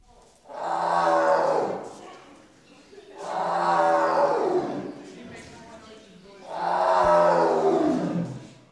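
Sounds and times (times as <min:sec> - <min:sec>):
tiger roaring in a zoo: 0:00.5 - 0:02.0, 0:03.2 - 0:05.0, 0:06.4 - 0:08.6.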